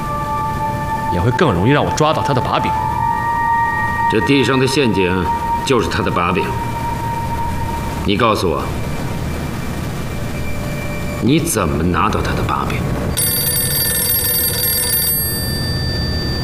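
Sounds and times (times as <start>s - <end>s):
steady low hum: 0.0s - 16.4s
speech: 1.1s - 3.0s, 4.1s - 6.7s, 8.0s - 8.8s, 11.2s - 13.2s
telephone ringing at a military police regiment headquarters: 13.2s - 16.4s.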